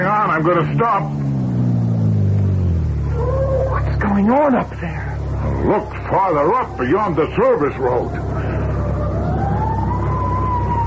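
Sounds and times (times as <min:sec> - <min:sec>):
low fire engine rumble: 0:00.0 - 0:10.8
speech: 0:00.4 - 0:01.4, 0:03.9 - 0:08.6
fire engine siren wailing: 0:02.9 - 0:10.8.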